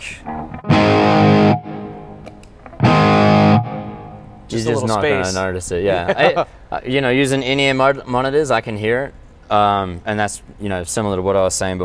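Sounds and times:
electric guitar through a delay pedal with light reverb playing gritty chords: 0.2s - 5.0s
speech: 4.5s - 11.8s.

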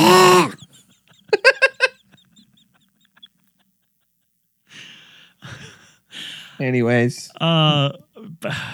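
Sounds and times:
person imitating a Wookiee growl with roars, yelps and grunts: 0.0s - 0.6s
laughter: 0.4s - 4.1s
speech: 6.6s - 8.7s.

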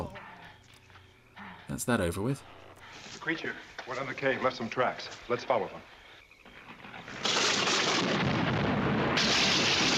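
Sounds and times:
speech: 1.8s - 6.0s
explosion: 6.8s - 9.9s.

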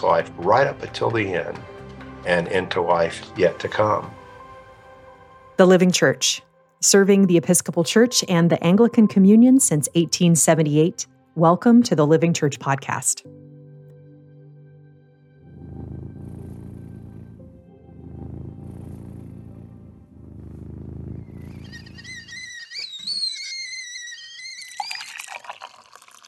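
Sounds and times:
speech: 0.0s - 4.2s, 5.6s - 13.4s
cat purring: 15.5s - 22.4s
tea kettle whistling: 21.3s - 26.2s
tea pouring into a cup: 24.6s - 26.2s.

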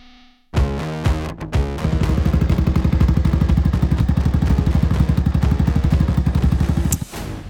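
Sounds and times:
motorcycle engine starting, revving and rumbling: 1.8s - 7.4s.

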